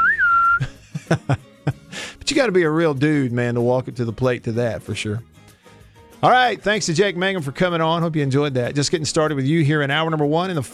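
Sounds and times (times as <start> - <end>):
person whistling a western theme melody: 0.0 - 0.8
laughter: 0.6 - 1.8
speech: 1.1 - 1.4, 2.4 - 5.3, 6.2 - 10.7.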